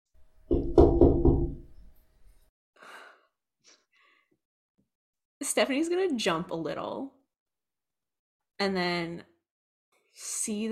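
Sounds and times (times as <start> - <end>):
quick loud knocks on a window with hollow ring: 0.5 - 1.7
speech: 5.5 - 7.2, 8.6 - 9.3, 10.2 - 10.6.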